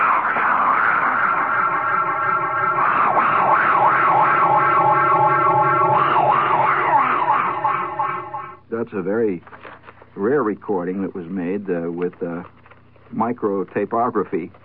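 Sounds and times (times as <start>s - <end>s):
human voice droning fungus noise through echo chamber: 0.0s - 8.6s
speech: 8.9s - 14.6s.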